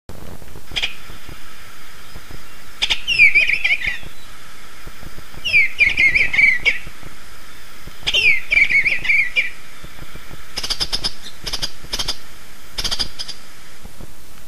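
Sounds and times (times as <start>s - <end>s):
bluebird call: 2.0s - 13.5s.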